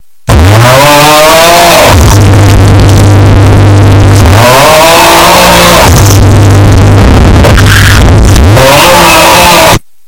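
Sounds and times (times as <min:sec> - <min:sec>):
loud distorted yell: 0:00.3 - 0:02.8, 0:03.9 - 0:09.9.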